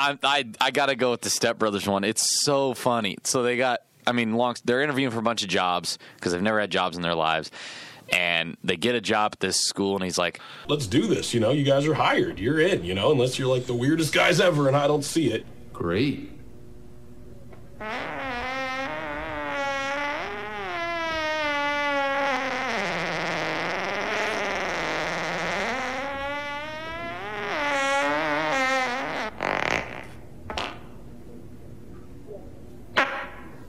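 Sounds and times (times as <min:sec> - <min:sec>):
speech: 0:00.0 - 0:16.3
long buzzy fart: 0:17.8 - 0:30.9, 0:32.9 - 0:33.6.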